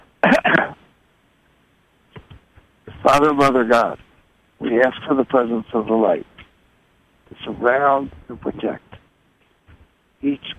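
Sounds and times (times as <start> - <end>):
person clearing throat: 0.2 - 0.8
speech: 3.1 - 4.0, 4.6 - 6.3, 7.4 - 8.9, 10.2 - 10.5.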